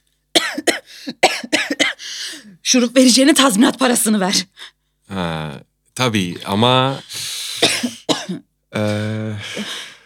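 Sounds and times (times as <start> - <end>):
person coughing after syrup went down the wrong way: 0.4 - 2.0, 7.1 - 9.9
speech: 2.7 - 9.8
gasping breaths: 7.0 - 7.6, 8.8 - 10.0.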